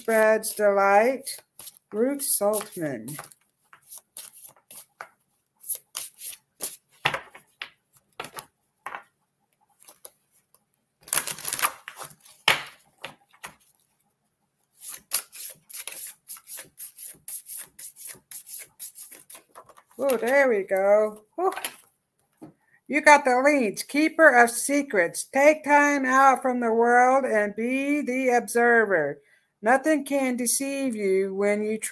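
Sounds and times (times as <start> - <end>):
speech: 0.0 - 3.4, 20.0 - 21.8, 22.9 - 31.8
deck of oracle cards being shuffled: 1.2 - 8.5, 9.7 - 13.8, 14.8 - 20.6.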